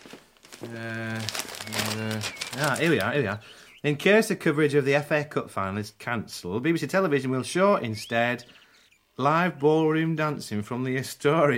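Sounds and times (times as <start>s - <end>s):
newspaper pages rustling: 0.0s - 3.5s
speech: 0.6s - 8.6s, 9.2s - 11.5s.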